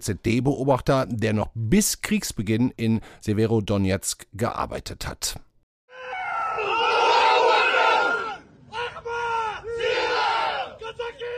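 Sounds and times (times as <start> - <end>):
speech: 0.0 - 5.5
crowd of pro-Russian separatist fighters in the Donbass cheering and shouting: 5.9 - 11.3.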